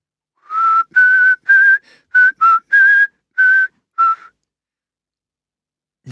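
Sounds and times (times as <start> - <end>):
man whistling a short bouncy tune: 0.4 - 4.4.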